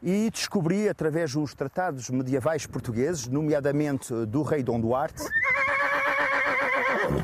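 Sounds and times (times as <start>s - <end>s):
speech: 0.0s - 5.6s
horse neighing in a long loud whinny: 5.2s - 7.2s.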